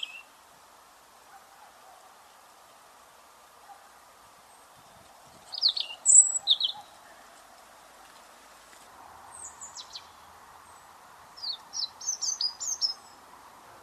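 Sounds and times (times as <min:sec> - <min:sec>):
European robin Erithacus rubecula singing: 0:00.0 - 0:00.4, 0:04.4 - 0:07.4, 0:09.3 - 0:13.3.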